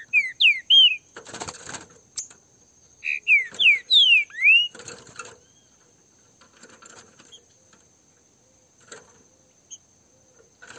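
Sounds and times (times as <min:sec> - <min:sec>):
Green-winged Saltator song of slurred whistles: 0:00.0 - 0:01.2, 0:03.0 - 0:05.8
Green-winged Saltator wings rustling: 0:01.1 - 0:02.4, 0:03.3 - 0:08.0.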